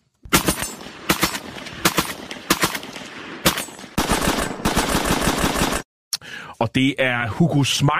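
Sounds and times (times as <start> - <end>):
German Sturmgewehr 44 assault rifle in 7.92 calibre firing single shots: 0.3 - 5.8
speech: 6.6 - 7.9.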